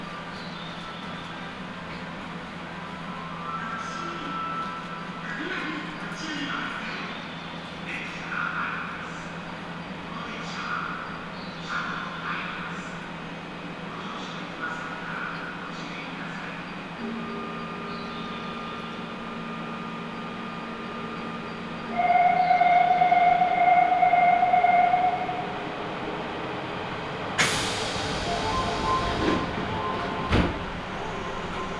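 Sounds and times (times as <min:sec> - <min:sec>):
subway train rumbling inside the carriage: 0:00.0 - 0:31.7
sharp hiss inside a subway train: 0:27.4 - 0:28.6.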